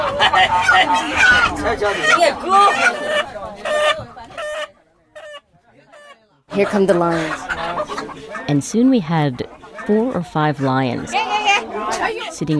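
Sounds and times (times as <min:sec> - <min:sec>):
chickens clucking: 0:00.0 - 0:12.5
speech: 0:00.3 - 0:04.2, 0:06.5 - 0:12.5.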